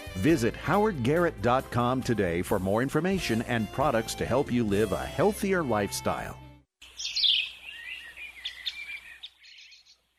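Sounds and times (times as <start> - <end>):
speech: 0.2 - 6.4
birds chirping and twittering in a chorus: 6.8 - 10.1.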